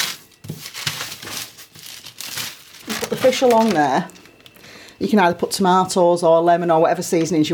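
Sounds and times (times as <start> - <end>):
baking paper crinkling while folded around fish: 0.0 - 4.6
speech: 3.2 - 4.2, 5.0 - 7.5.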